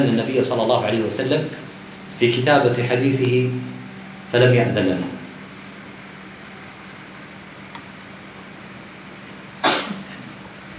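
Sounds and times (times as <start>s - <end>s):
speech: 0.0s - 1.6s, 2.2s - 5.2s
faint steady hum: 0.0s - 10.7s
sneeze: 9.6s - 10.2s.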